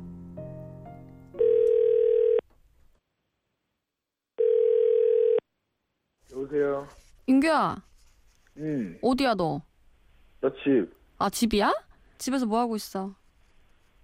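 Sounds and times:
soft music: 0.0 - 1.9
telephone dial tone while placing a call: 1.4 - 2.4, 4.4 - 5.4
speech: 7.4 - 7.9, 8.6 - 9.7, 10.4 - 13.2.

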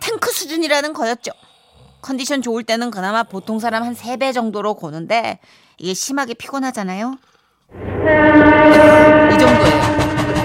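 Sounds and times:
speech: 0.3 - 9.8
train rumbling past: 7.7 - 10.4.

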